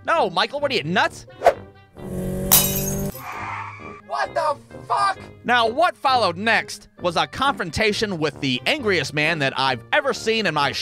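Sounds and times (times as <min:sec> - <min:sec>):
speech: 0:00.1 - 0:01.5, 0:04.1 - 0:10.7
empty glass bottle smashing in a busy street intersection: 0:02.4 - 0:03.3
scattered glass shards tinkling: 0:02.5 - 0:03.2.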